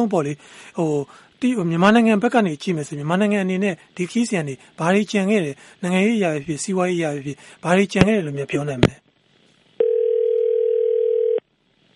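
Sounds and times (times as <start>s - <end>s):
speech: 0.0s - 9.0s
telephone dial tone after a call line dropped: 9.8s - 11.4s.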